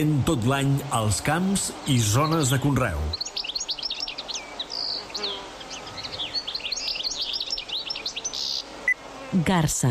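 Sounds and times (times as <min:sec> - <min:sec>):
speech: 0:00.0 - 0:03.4, 0:09.3 - 0:09.8
European goldfinch singing: 0:01.9 - 0:09.0.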